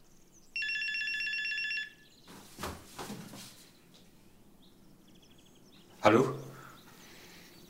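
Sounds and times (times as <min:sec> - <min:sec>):
mobile phone ringing with a warbling electronic trill: 0:00.6 - 0:02.1
rustling and handling noises: 0:02.3 - 0:04.2
speech: 0:06.0 - 0:06.4.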